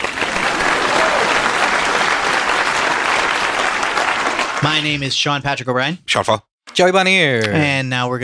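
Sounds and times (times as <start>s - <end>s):
audience applause: 0.0s - 5.0s
speech: 4.7s - 8.2s.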